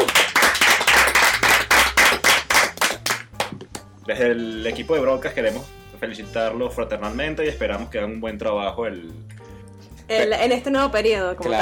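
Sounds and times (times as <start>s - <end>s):
applause for newly elected school representatives: 0.0s - 3.6s
speech: 4.1s - 9.3s, 10.1s - 11.6s.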